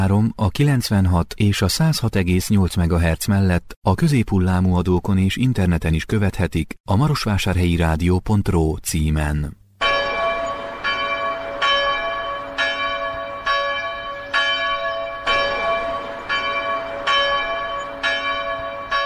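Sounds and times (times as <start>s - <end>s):
speech: 0.0s - 9.6s
church bell ringing: 9.8s - 19.0s.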